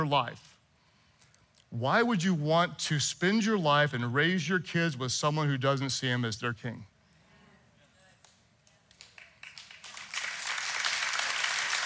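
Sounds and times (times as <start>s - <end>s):
speech: 0.0s - 0.5s, 1.7s - 6.9s
audience clapping: 8.2s - 11.8s.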